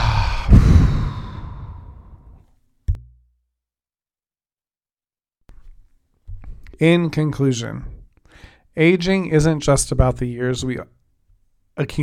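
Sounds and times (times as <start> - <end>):
big exhale: 0.0 - 2.4
speech: 6.8 - 8.0, 8.8 - 11.0, 11.8 - 12.0.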